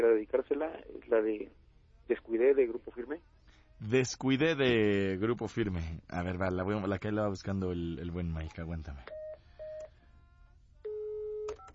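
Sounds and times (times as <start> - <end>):
speech: 0.0 - 9.2
touch-tone telephone keypad beeps as a number is dialed: 10.9 - 11.7.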